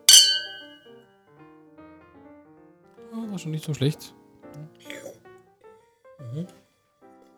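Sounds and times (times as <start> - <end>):
red wine glasses clinking in a toast: 0.0 - 0.8
speech: 3.2 - 4.2, 6.4 - 6.6.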